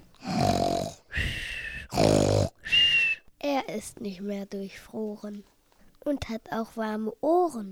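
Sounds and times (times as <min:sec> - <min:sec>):
bear snoring: 0:00.0 - 0:02.9
speech: 0:03.7 - 0:07.7.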